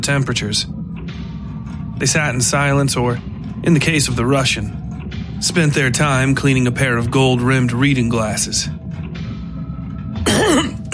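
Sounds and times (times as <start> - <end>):
speech: 0.0 - 0.8, 2.0 - 4.8, 5.4 - 8.8
man clearing his throat: 10.2 - 10.9.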